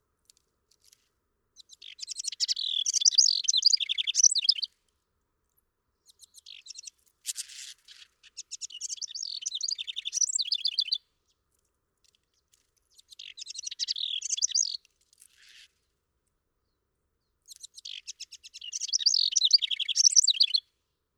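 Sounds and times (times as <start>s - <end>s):
House Wren singing: 1.6s - 4.7s, 6.0s - 11.0s, 12.9s - 15.6s, 17.5s - 20.6s.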